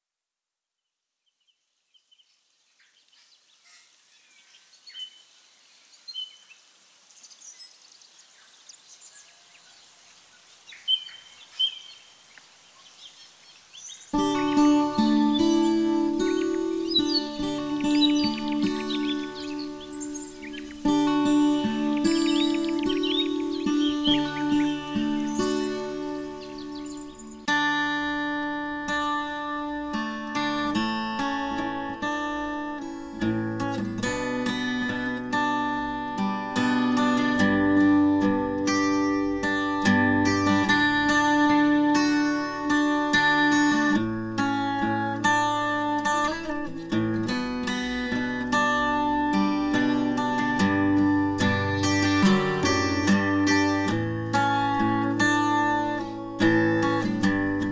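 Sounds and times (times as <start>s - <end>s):
ambient guitars: 14.1s - 57.6s.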